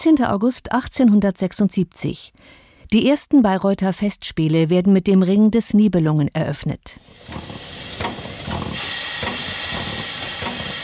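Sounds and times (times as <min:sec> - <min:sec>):
speech: 0:00.0 - 0:07.6
special steam train arriving at Bayreuth station: 0:07.0 - 0:10.8
steam train clanks: 0:07.2 - 0:10.8.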